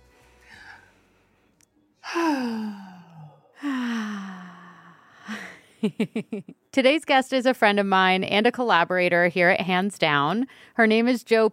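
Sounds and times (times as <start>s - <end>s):
deep voiced sighing breaths: 0.0s - 5.7s
speech: 5.8s - 11.5s.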